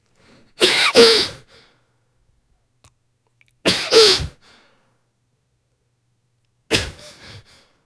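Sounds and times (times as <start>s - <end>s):
man sneezing from allergy: 0.6s - 1.4s, 3.7s - 4.4s, 6.7s - 7.4s.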